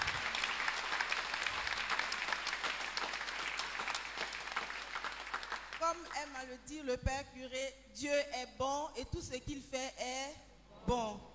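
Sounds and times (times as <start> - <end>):
church congregation applauding in thanks during a service: 0.0 - 5.8
speech: 5.9 - 11.3.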